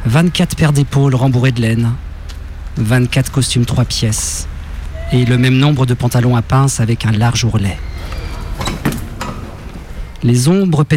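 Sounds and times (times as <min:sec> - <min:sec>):
low rumble: 0:00.0 - 0:10.5
speech: 0:00.1 - 0:02.1, 0:02.8 - 0:04.5, 0:05.1 - 0:07.9, 0:10.2 - 0:10.9
doors slamming shut: 0:07.4 - 0:10.5
wooden floorboards creaking: 0:07.8 - 0:10.2.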